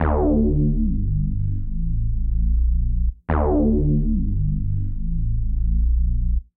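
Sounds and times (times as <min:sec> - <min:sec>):
bass line in G minor: 0:00.0 - 0:06.5.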